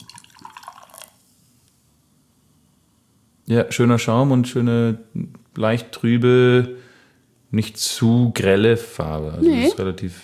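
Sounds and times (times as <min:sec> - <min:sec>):
beer pouring into a glass: 0:00.0 - 0:01.3
speech: 0:03.5 - 0:06.8, 0:07.5 - 0:10.2.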